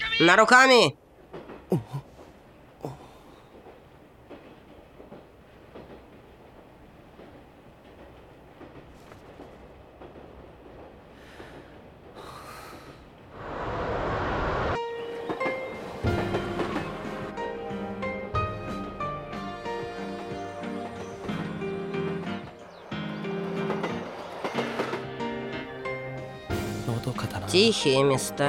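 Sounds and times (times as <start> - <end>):
speech: 0.2 - 1.0, 27.6 - 28.4
train rolling along the rails toward its terminal station: 1.0 - 28.3
train wheels clacking rhythmically on rails: 3.5 - 12.3, 15.1 - 17.5, 19.7 - 27.9.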